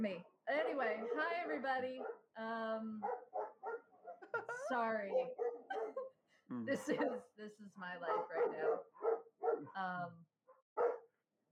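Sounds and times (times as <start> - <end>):
speech: 0.0 - 3.3, 4.5 - 5.4, 6.5 - 10.9
dog barking and yowling: 0.5 - 2.2, 3.0 - 6.0, 8.0 - 9.8, 10.8 - 11.1
laughter: 4.2 - 7.3.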